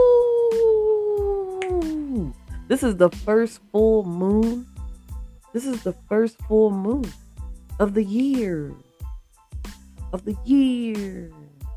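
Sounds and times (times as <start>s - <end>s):
person imitating a wolf howl: 0.0s - 2.4s
speech: 2.7s - 4.7s, 5.5s - 7.2s, 7.8s - 8.8s, 10.1s - 11.4s.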